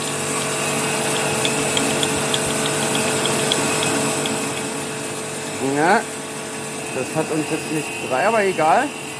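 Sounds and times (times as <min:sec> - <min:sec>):
tool grinding against a rotating grindstone: 0:00.0 - 0:05.2
low motor hum: 0:00.0 - 0:07.0
faint regular ticks: 0:00.9 - 0:04.7
speech: 0:05.8 - 0:06.1, 0:07.0 - 0:09.0.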